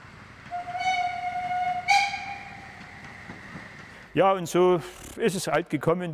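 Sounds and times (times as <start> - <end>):
steam locomotive steam hissing: 0.0 - 4.2
steam locomotive whistle on narrow-gauge railway: 0.5 - 3.1
speech: 4.2 - 6.1.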